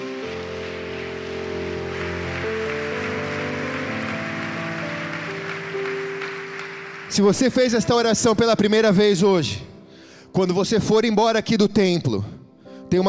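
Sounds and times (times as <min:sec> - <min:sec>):
large crowd applauding: 0:00.0 - 0:08.7
keyboard or organ chords: 0:00.0 - 0:11.2
speech: 0:07.1 - 0:09.7, 0:10.3 - 0:12.3.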